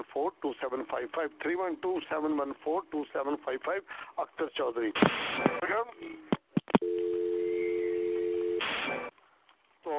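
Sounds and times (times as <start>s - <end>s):
speech: 0.2s - 7.0s
phone line tone after caller hangs up: 6.8s - 9.1s.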